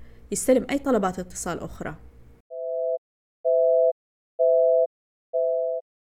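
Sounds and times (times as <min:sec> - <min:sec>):
speech: 0:00.3 - 0:02.1
telephone busy signal: 0:02.5 - 0:05.8.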